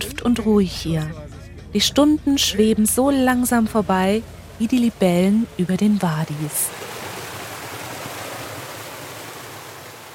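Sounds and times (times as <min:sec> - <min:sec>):
speech: 0:00.2 - 0:06.8
water flowing through a stone irrigation channel: 0:03.4 - 0:10.1.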